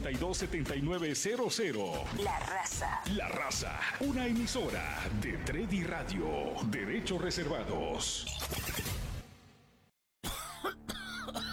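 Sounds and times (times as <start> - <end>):
speech: 0.0 - 8.9
harsh coughs: 10.2 - 11.5.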